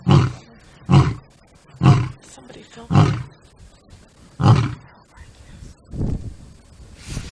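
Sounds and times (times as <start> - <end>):
lion giving deep short grunting roars: 0.0 - 2.3, 2.9 - 3.4, 4.4 - 4.9.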